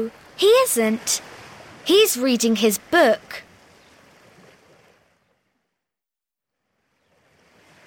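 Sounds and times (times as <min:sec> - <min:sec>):
beach surf roaring: 0:00.0 - 0:03.4
speech: 0:00.0 - 0:03.5.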